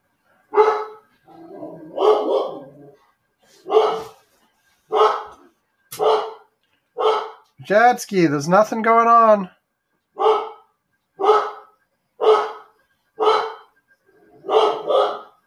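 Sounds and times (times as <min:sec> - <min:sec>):
dog barking: 0:00.5 - 0:01.1, 0:01.8 - 0:03.0, 0:03.6 - 0:04.2, 0:04.9 - 0:07.4, 0:10.2 - 0:13.7, 0:14.4 - 0:15.4
speech: 0:07.6 - 0:09.6.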